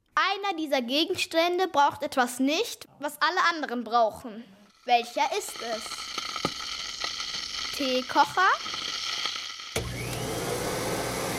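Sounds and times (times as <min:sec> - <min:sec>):
speech: 0:00.5 - 0:06.2, 0:07.8 - 0:08.8
vacuum cleaner roaring whine: 0:08.6 - 0:11.3.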